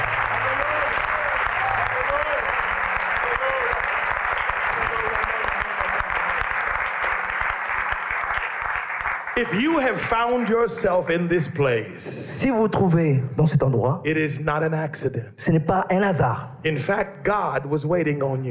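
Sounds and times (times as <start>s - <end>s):
faint voices and cheers: 0.0s - 6.8s
large audience applauding: 0.0s - 11.4s
speech: 9.4s - 18.4s.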